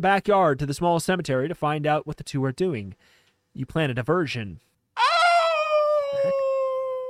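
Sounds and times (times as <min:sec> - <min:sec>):
speech: 0:00.0 - 0:04.7
person imitating a wolf howl from behind a thick bush: 0:05.0 - 0:07.0.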